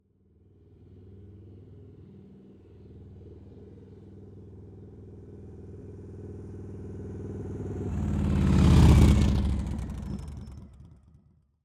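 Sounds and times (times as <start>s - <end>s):
1507 CC motorcycle passing by at 30 kph: 4.6s - 11.2s.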